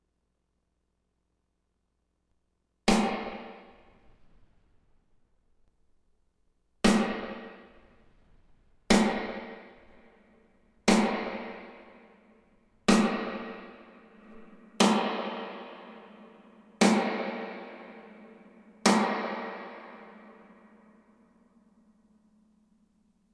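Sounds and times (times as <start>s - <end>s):
snare drum hits with hall reverb: 2.9s - 4.5s, 6.8s - 20.8s.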